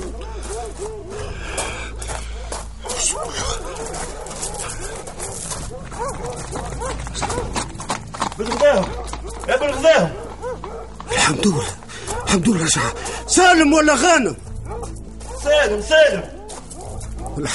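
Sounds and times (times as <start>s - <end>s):
several dogs barking: 0.0s - 17.5s
speech: 12.4s - 14.5s, 15.7s - 16.3s, 17.4s - 17.5s.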